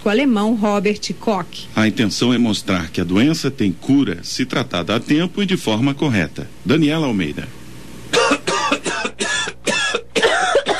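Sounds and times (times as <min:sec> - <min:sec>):
speech: 0:00.0 - 0:07.6
person coughing harshly: 0:08.1 - 0:10.7.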